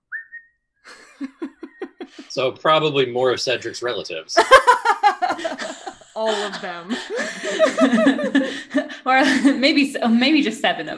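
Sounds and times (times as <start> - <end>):
person idly whistling a tune: 0.0 - 0.6
laughter: 0.9 - 2.4, 4.4 - 9.6
speech: 2.4 - 10.9.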